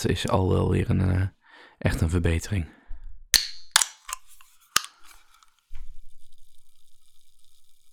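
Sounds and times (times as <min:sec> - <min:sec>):
speech: 0:00.0 - 0:02.8
fizzy energy drink can popping open: 0:03.4 - 0:05.7.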